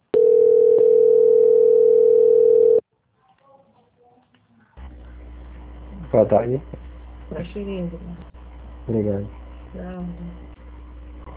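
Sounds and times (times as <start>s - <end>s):
telephone tone while a call is being transferred: 0.2s - 2.8s
speech: 6.2s - 10.6s.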